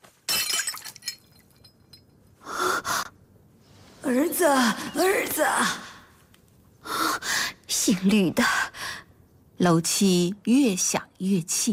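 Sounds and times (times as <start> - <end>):
ceramic porridge bowl dropping and shattering on the floor: 0.3 - 2.1
speech: 4.1 - 5.8, 7.9 - 8.6, 9.6 - 11.7.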